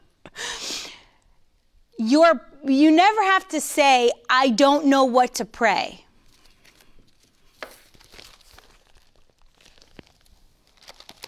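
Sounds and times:
speech: 2.0s - 6.0s
sheet of paper with written prayers rustling and crinkling as handled: 6.2s - 11.2s.

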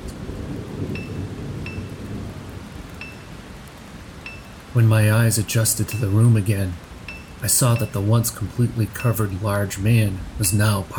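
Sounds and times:
deep continuous rumble of thunder: 0.0s - 6.0s
speech: 4.8s - 6.8s, 7.4s - 10.9s.

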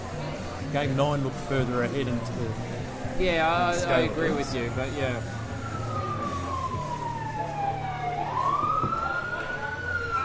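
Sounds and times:
speech: 0.7s - 5.4s
fire engine siren wailing: 4.3s - 10.2s.

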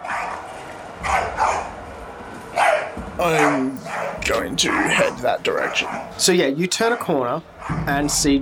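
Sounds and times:
dog barking: 0.0s - 1.8s, 2.6s - 6.2s, 6.8s - 8.0s
speech: 3.2s - 8.4s.

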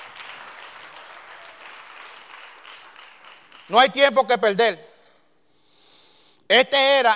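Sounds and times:
audience applauding during a Spanish-language sermon: 0.0s - 4.0s
speech: 3.7s - 4.9s, 6.5s - 7.1s.

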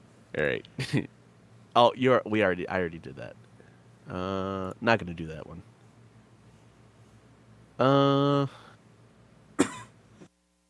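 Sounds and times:
speech: 0.3s - 1.2s, 1.8s - 3.4s, 4.1s - 5.7s, 7.8s - 8.6s
person making a short voiced hum-like sound: 4.1s - 4.7s, 7.8s - 8.7s
person coughing: 9.6s - 10.0s.

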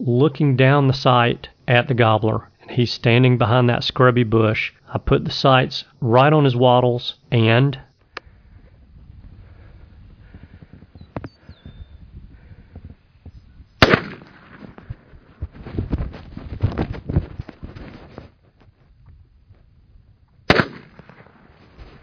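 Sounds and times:
speech: 0.0s - 7.9s
shotgun blasts fired at a turkey gobbler: 13.8s - 14.9s, 20.5s - 21.5s
irregular rustling: 14.5s - 18.9s.

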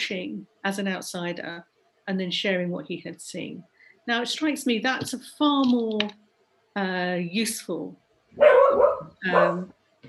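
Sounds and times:
speech: 0.1s - 6.2s, 6.8s - 9.8s
dog barking: 8.4s - 9.7s.

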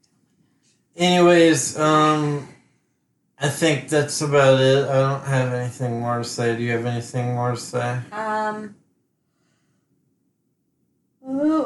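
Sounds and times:
short vocal sound: 1.0s - 2.5s, 3.4s - 8.0s
speech: 1.0s - 2.5s, 3.4s - 8.8s
loud drawn-out yawn with sliding pitch: 1.3s - 2.4s.

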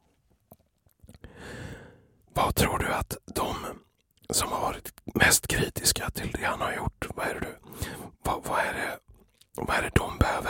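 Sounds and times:
chewing a peach: 0.5s - 1.3s, 3.3s - 4.3s, 8.9s - 10.2s
speech: 2.4s - 9.0s, 9.6s - 10.4s.

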